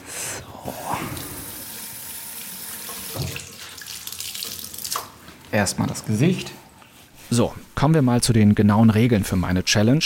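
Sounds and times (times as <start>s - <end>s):
speech: 0.7s - 1.2s, 5.5s - 6.6s, 7.3s - 10.0s
faucet running into a sink: 1.2s - 5.2s
water splashing on a washcloth held under the stream: 2.4s - 5.6s.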